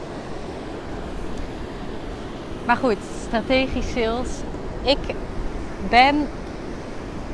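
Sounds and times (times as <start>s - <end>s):
ocean waves breaking on shore: 0.0s - 7.3s
speech: 2.7s - 6.4s.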